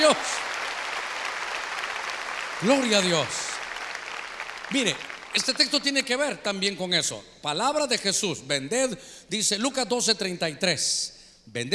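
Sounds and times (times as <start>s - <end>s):
speech: 0.0s - 0.5s, 2.6s - 3.4s, 4.7s - 11.7s
church audience clapping loudly during a sermon: 0.0s - 6.4s.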